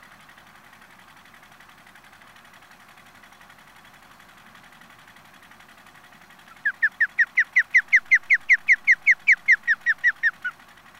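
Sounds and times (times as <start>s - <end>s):
osprey Pandion haliaetus calling whistled chirps: 6.6s - 10.5s.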